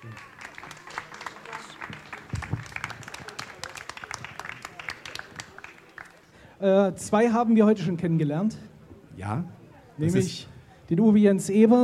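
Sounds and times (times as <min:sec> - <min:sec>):
audience applause: 0:00.0 - 0:06.3
speech: 0:06.6 - 0:11.8.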